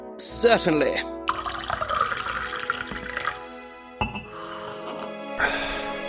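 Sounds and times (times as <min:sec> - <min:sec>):
speech: 0:00.2 - 0:01.2
tea pouring into a cup: 0:01.2 - 0:04.4
cup clink: 0:04.0 - 0:04.3.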